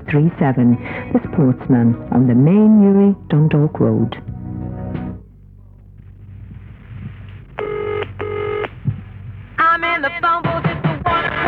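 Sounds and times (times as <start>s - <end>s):
low rumble: 0.0s - 11.4s
speech: 0.1s - 4.4s
telephone ringing with a classic double trill: 7.6s - 8.7s.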